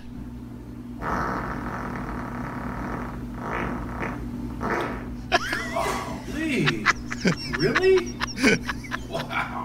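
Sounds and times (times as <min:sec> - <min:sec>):
long loud sputtering fart: 0:01.0 - 0:05.2
laughter: 0:05.3 - 0:09.6.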